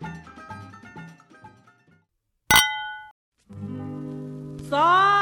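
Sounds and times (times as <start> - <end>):
wine glasses clinking in a toast: 2.5 - 3.1
speech: 4.7 - 5.1.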